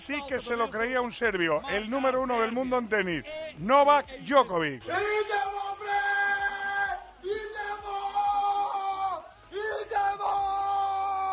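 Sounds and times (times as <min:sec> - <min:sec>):
speech: 0:00.0 - 0:06.1
man yelling in celebration from window: 0:04.8 - 0:11.3.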